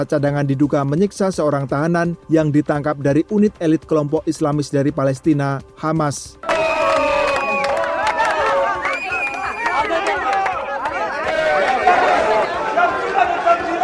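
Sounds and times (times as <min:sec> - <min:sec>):
speech: 0:00.0 - 0:06.5
large crowd of protesters shouting at a military base: 0:06.4 - 0:13.8.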